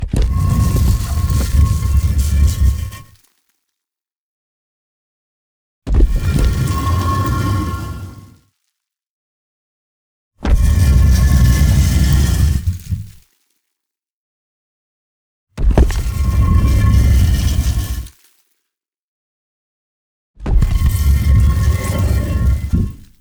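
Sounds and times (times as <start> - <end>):
tomb sliding open: 0.0 - 3.1, 6.0 - 8.4, 10.6 - 13.2, 15.8 - 18.1, 20.6 - 23.1.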